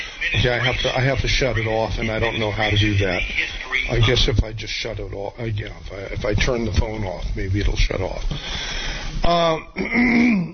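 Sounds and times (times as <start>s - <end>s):
speech: 0.2s - 10.5s
person clearing throat: 9.4s - 10.5s.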